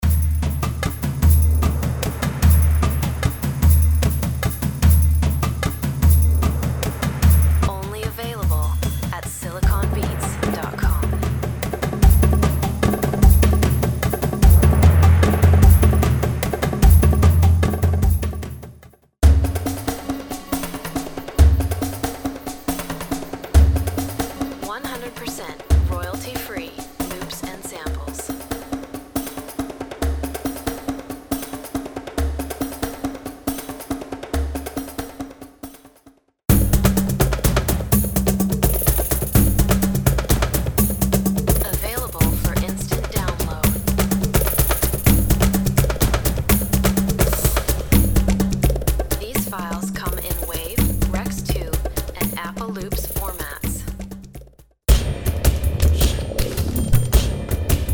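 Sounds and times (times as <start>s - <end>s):
tribal drums: 0.0s - 57.9s.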